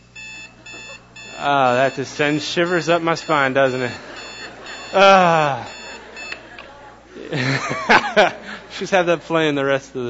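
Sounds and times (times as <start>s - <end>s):
alarm clock beeping: 0.0s - 6.6s
laughter: 0.5s - 10.0s
speech: 1.4s - 4.1s, 4.9s - 5.8s, 7.3s - 10.0s.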